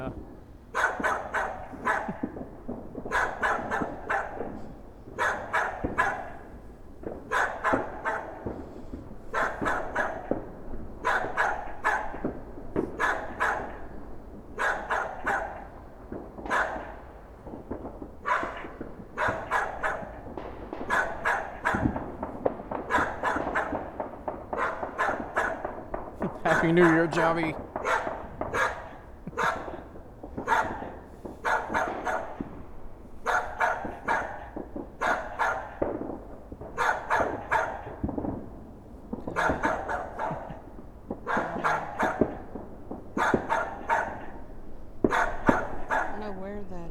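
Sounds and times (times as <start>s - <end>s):
dog barking: 0.7s - 2.4s, 3.1s - 6.6s, 7.2s - 8.6s, 9.3s - 10.4s, 11.0s - 14.0s, 14.6s - 15.8s, 16.4s - 17.0s, 18.2s - 22.2s, 22.8s - 23.9s, 24.5s - 27.0s, 27.8s - 32.5s, 33.2s - 35.9s, 36.8s - 38.0s, 39.2s - 42.6s, 43.2s - 46.4s
speech: 26.8s - 27.6s.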